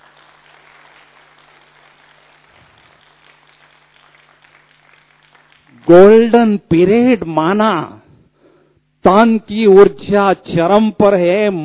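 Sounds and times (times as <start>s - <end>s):
audience applause at a talk: 0.0s - 6.0s
speech: 5.8s - 8.0s, 9.0s - 11.6s.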